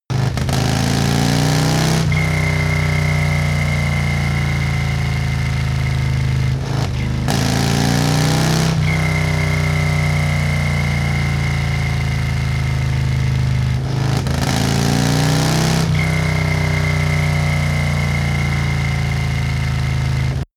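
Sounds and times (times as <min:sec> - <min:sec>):
Harley motorcycle accelerating: 0:00.1 - 0:20.5
triple whistle: 0:01.7 - 0:06.2, 0:08.0 - 0:12.9, 0:15.6 - 0:19.6.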